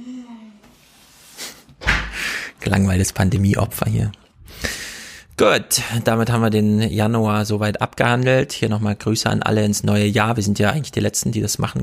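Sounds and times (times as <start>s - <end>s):
door slamming: 1.8s - 2.2s
speech: 2.6s - 4.2s, 5.4s - 11.8s.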